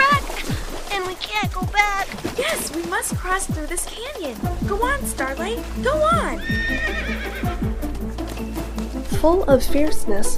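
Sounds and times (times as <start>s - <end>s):
horse hooves clip-clopping: 0.0s - 10.3s
speech: 1.2s - 7.6s, 9.2s - 10.3s
horse whinnying: 6.1s - 7.7s.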